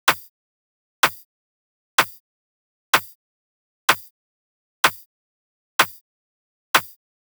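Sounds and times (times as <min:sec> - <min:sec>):
drum loop with clap in G minor: 0:00.1 - 0:00.3, 0:01.0 - 0:01.2, 0:02.0 - 0:02.2, 0:04.8 - 0:05.0, 0:05.8 - 0:06.0, 0:06.8 - 0:07.0.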